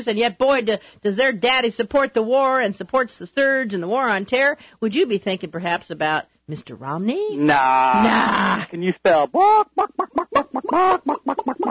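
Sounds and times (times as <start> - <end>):
speech: 0.0 - 11.7
duck call blown to imitate chicken clucks: 9.4 - 11.7.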